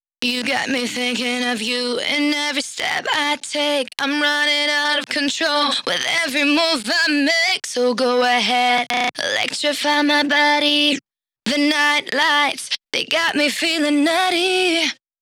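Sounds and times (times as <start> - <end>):
dry female vocals singing a verse: 0.2 - 15.0.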